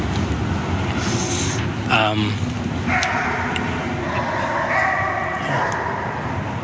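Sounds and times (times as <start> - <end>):
constant roar of highway traffic: 0.0 - 6.6
unhappy-sounding dog barking beneath a highway: 2.9 - 6.4.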